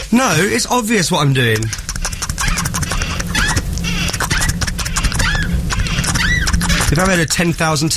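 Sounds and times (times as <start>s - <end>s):
speech: 0.1s - 1.9s, 6.9s - 7.9s
squeaky door hinge creaking as the door is oiled and swung: 1.6s - 7.1s.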